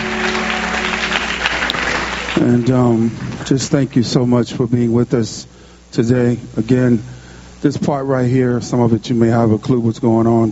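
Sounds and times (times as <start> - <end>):
crowd clapping steadily: 0.0 - 3.0
speech: 2.4 - 10.5.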